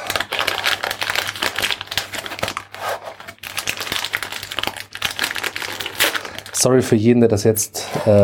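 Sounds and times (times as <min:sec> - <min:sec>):
plastic packaging crinkling as a new pack is opened: 0:00.0 - 0:06.9
speech: 0:06.6 - 0:08.2.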